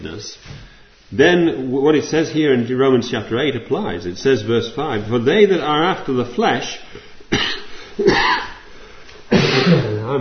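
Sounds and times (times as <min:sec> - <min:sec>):
speech: 0:00.1 - 0:08.5
person coughing: 0:07.3 - 0:08.7, 0:09.3 - 0:10.2.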